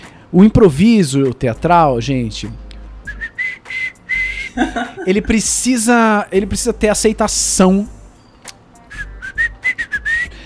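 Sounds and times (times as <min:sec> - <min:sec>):
speech: 0:00.3 - 0:02.6, 0:04.6 - 0:08.0
person whistling short notes imitating a whistling filler sound: 0:03.1 - 0:04.6, 0:08.2 - 0:10.4
laughter: 0:04.4 - 0:05.6.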